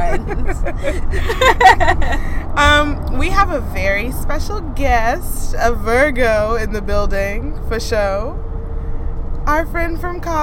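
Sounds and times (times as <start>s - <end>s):
people laughing: 0.0s - 2.4s
low road hum inside a moving car: 0.0s - 10.4s
speech: 3.4s - 8.4s, 9.5s - 10.4s.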